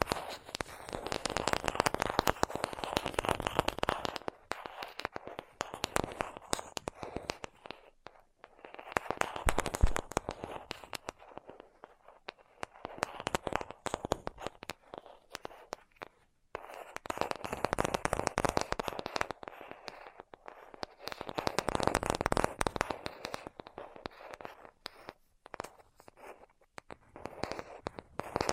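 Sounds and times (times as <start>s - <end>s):
rapid crisp crackly tapping in dense bursts: 0.0s - 28.5s.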